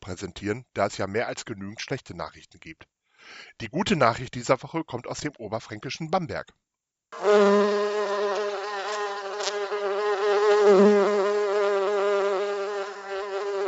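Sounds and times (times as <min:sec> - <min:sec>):
speech: 0:00.1 - 0:07.7, 0:10.7 - 0:11.1
bee buzzing: 0:07.2 - 0:13.6.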